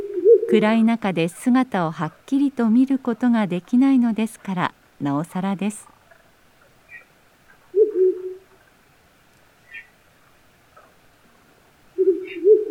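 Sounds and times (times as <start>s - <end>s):
male owl hooting in a low voice: 0.0s - 0.6s, 7.7s - 8.6s, 9.6s - 10.0s, 12.0s - 12.6s
speech: 0.5s - 5.9s.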